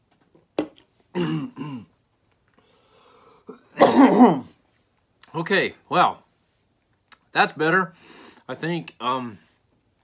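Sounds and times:
person coughing after inhaling popcorn: 0:01.2 - 0:01.9, 0:03.5 - 0:04.5
speech: 0:01.2 - 0:01.9, 0:04.0 - 0:04.5, 0:05.4 - 0:06.2, 0:07.4 - 0:09.4.

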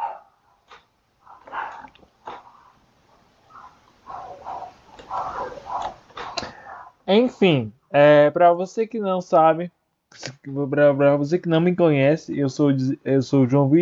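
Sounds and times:
several dogs barking and yelping: 0:00.0 - 0:06.9
speech: 0:07.1 - 0:13.7.

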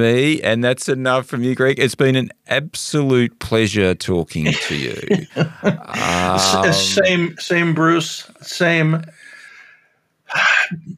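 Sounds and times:
speech: 0:00.0 - 0:09.2, 0:10.3 - 0:10.9
laughter: 0:04.4 - 0:07.1
sharp sneeze with breathy intake and throaty trailing sound: 0:05.9 - 0:07.0.

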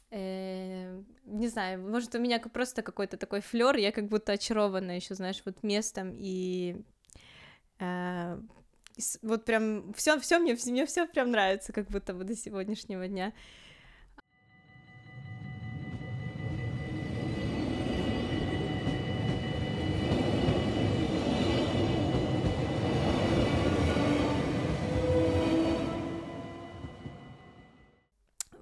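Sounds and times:
speech: 0:01.4 - 0:07.2, 0:07.8 - 0:13.6
passenger train rumbling: 0:15.3 - 0:27.8.

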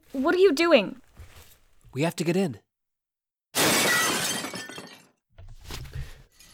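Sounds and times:
speech: 0:00.1 - 0:01.0, 0:02.0 - 0:02.6
window pane shattering: 0:03.6 - 0:06.4
glass fragments settling with crunch and clatter: 0:03.8 - 0:05.1.

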